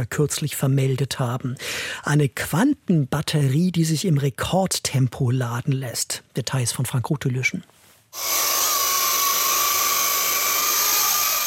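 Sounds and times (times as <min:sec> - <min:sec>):
speech: 0:00.0 - 0:08.7
hovering drone with high whining motor: 0:08.2 - 0:11.4.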